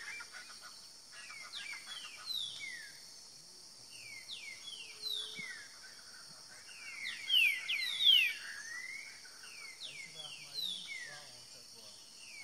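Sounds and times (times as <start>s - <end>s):
other birds calling: 0.0s - 3.1s, 3.9s - 12.4s.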